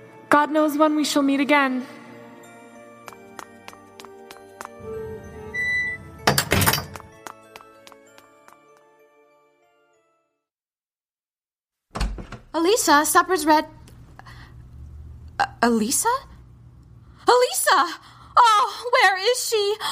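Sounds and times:
speech: 0.3s - 2.0s, 12.7s - 13.8s, 15.6s - 16.3s, 17.3s - 19.8s
side door opening and closing: 4.8s - 7.1s, 11.9s - 12.6s.

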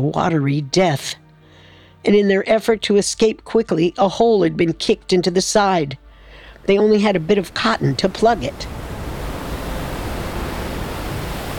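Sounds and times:
speech: 0.0s - 1.2s, 2.0s - 6.0s, 6.6s - 8.8s
stormy ocean waves crashing: 6.4s - 11.5s.

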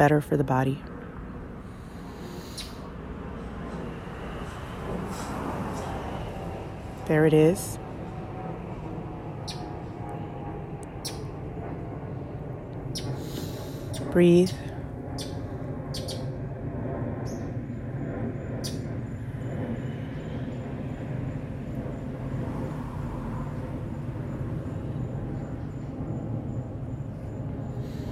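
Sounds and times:
speech: 0.0s - 0.9s, 7.1s - 7.8s, 14.1s - 14.6s
airplane: 0.0s - 28.0s
distant traffic rumble: 0.0s - 28.0s
faint bird chirps: 2.3s - 2.8s, 13.9s - 16.3s.

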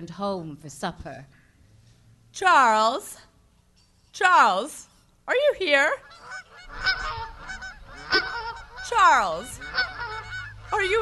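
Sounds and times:
speech: 0.0s - 1.4s, 2.4s - 3.3s, 4.2s - 7.2s, 8.9s - 9.9s, 10.7s - 11.0s
geese honking in a barn pen: 5.7s - 11.0s.

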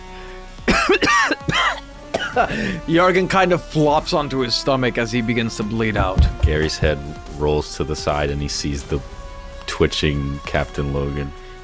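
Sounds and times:
harsh throaty coughs: 0.7s - 2.9s
speech: 0.8s - 1.3s, 2.4s - 11.6s.

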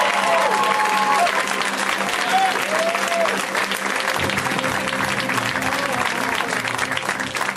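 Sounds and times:
audience applause at a stand-up comedy show: 0.0s - 7.5s.

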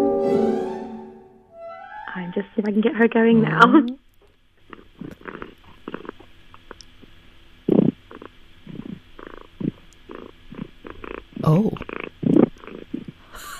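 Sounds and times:
speech: 2.4s - 4.0s
domestic cat purring very loudly: 4.6s - 6.8s, 7.6s - 13.3s.

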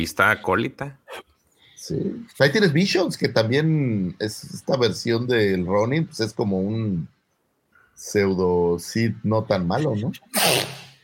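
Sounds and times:
speech: 0.0s - 1.0s, 1.8s - 7.2s, 8.0s - 10.8s
person sneezing: 10.3s - 11.0s.

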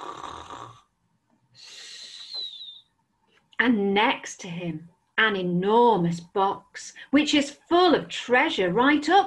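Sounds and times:
gentle snoring: 0.0s - 0.9s
speech: 3.6s - 9.2s.

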